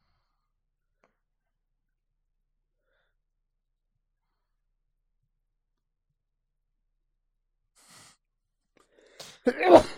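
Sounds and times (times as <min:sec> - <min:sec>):
sharp inhale: 0:07.8 - 0:08.2
sneeze: 0:09.2 - 0:09.9.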